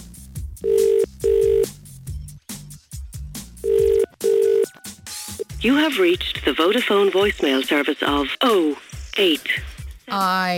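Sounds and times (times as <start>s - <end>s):
telephone ringback tone of an outgoing call to Munster, Ireland: 0.6s - 1.7s, 3.6s - 4.7s
speech: 5.6s - 10.5s.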